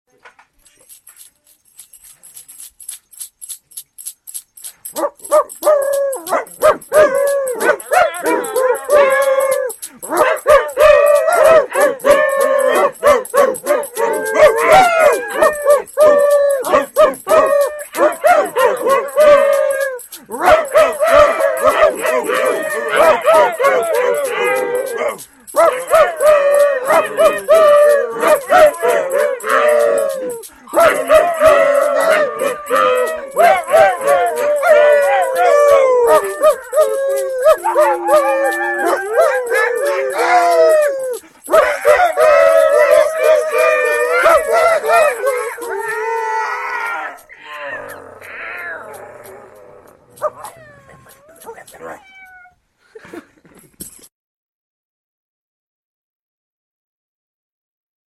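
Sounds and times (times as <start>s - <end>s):
dog barking a Christmas tune: 4.7s - 45.8s, 50.2s - 52.1s.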